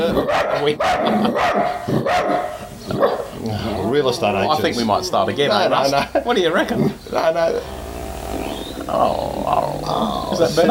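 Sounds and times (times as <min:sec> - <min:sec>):
dogs barking: 0:00.0 - 0:03.4
busy noise: 0:00.0 - 0:10.6
speech: 0:00.6 - 0:07.8, 0:08.9 - 0:10.6
laughter: 0:00.7 - 0:01.8, 0:04.5 - 0:07.5, 0:10.2 - 0:10.6.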